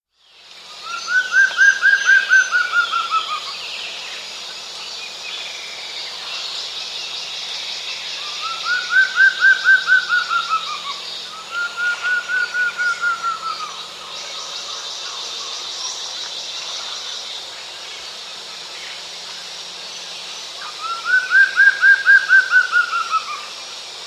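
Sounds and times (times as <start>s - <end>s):
Plumbeous Antvireo calling in South America: 0.8s - 3.6s, 8.2s - 15.7s, 20.6s - 23.5s.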